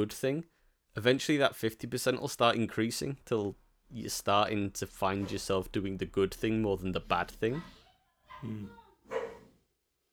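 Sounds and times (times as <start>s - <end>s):
speech: 0.0s - 7.8s, 8.4s - 8.8s
dog barking with short full-throated woofs: 7.6s - 9.6s.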